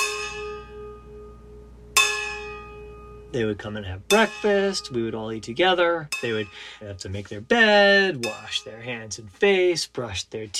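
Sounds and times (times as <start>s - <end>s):
fork striking a steel water bottle like a gong: 2.0s - 2.6s, 4.1s - 4.9s, 6.1s - 6.6s, 8.2s - 8.9s
speech: 3.3s - 10.5s.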